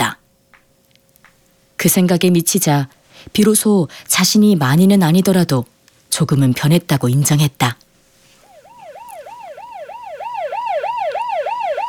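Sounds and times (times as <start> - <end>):
speech: 1.8 - 7.8
ambulance siren yelping: 8.4 - 11.8.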